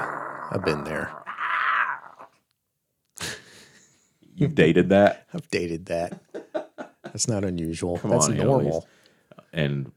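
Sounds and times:
person mimicking a cat-like animal snarl: 0.0s - 2.4s
speech: 0.5s - 1.2s, 4.4s - 6.3s, 7.1s - 9.9s.

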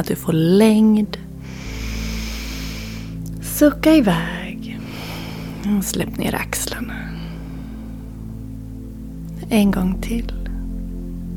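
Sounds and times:
speech: 0.0s - 1.3s, 3.6s - 4.4s, 5.6s - 7.0s, 9.5s - 10.4s
deep inhale through the nose: 1.4s - 3.2s, 4.7s - 5.8s, 6.9s - 8.6s.

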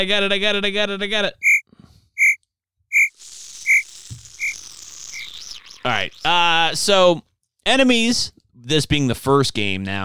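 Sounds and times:
speech: 0.0s - 1.5s, 5.8s - 10.0s
continuous high insect trill: 3.0s - 5.4s
crickets chirping sound effect played from a button: 3.7s - 5.4s.

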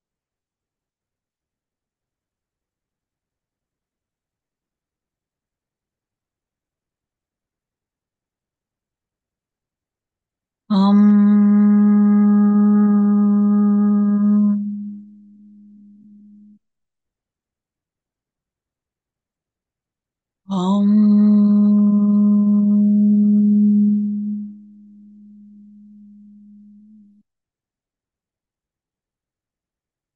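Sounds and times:
low steady throat chakra vocal hum: 10.7s - 16.6s, 20.5s - 27.1s.

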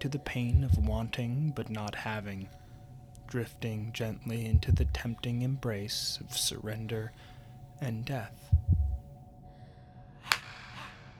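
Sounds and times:
speech: 0.0s - 2.6s, 3.3s - 8.7s
quiet low rumble: 0.3s - 9.2s
soft dull thump: 0.5s - 1.0s, 4.5s - 5.1s, 8.5s - 9.0s
woman slapping her face hard on a footpath above a valley: 10.3s - 11.0s.

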